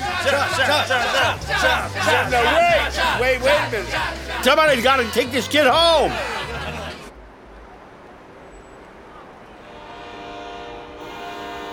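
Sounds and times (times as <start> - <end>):
laughter: 0.0 - 7.1
speech: 0.2 - 6.4
train horn long sustained blast: 9.5 - 11.7.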